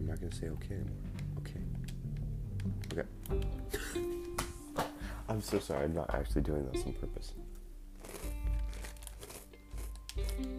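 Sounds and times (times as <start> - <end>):
speech: 0.1 - 2.0, 2.6 - 4.2, 5.3 - 7.4
crunching fried green bean snacks being chewed: 8.0 - 10.5.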